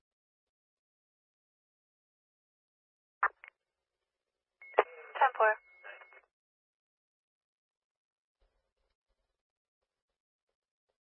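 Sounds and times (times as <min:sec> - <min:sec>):
radio dispatch alert tones: 0:04.6 - 0:06.2.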